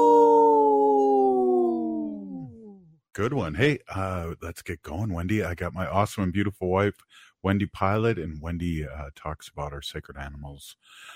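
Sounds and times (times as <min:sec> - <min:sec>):
wolf howling: 0:00.0 - 0:02.6
speech: 0:03.2 - 0:11.1.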